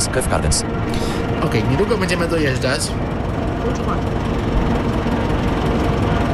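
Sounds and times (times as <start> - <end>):
train locomotive diesel engine rumble: 0.0 - 6.3
speech: 0.2 - 4.8.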